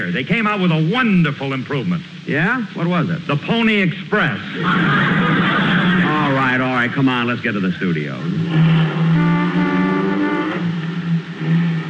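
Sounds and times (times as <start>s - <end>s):
speech: 0.1s - 6.2s, 6.8s - 9.0s
laughter: 4.5s - 6.9s
car engine running: 8.2s - 11.8s.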